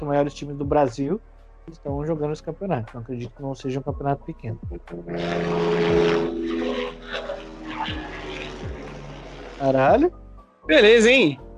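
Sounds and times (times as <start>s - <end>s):
speech: 0.0s - 7.0s, 9.6s - 11.4s
propeller airplane roaring low overhead: 5.0s - 10.0s.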